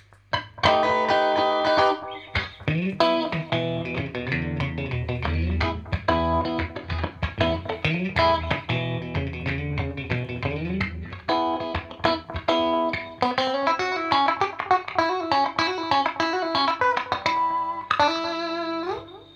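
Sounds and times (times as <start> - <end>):
electric guitar through compressor pedal playing chords and single notes: 0.3 - 19.3.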